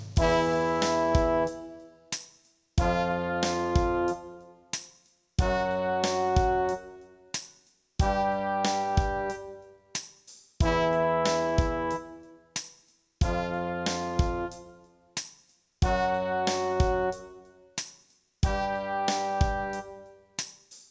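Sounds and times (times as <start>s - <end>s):
brass instrument practice: 0.2s - 4.8s, 5.4s - 7.4s, 8.0s - 9.9s, 10.6s - 12.6s, 13.2s - 15.1s, 15.8s - 17.8s, 18.4s - 20.4s.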